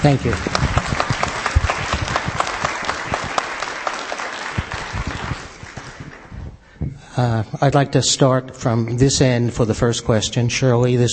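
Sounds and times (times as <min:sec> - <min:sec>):
speech: 0:00.0 - 0:00.5, 0:07.2 - 0:11.1
room full of people applauding: 0:00.0 - 0:06.5.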